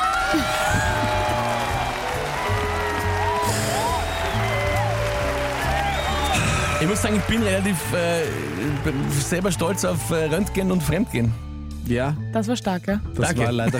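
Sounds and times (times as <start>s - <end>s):
crowd applause: 0.0s - 10.8s
speech: 0.3s - 0.6s, 6.8s - 13.7s
laughter: 0.3s - 2.0s, 4.9s - 9.5s, 13.3s - 13.7s.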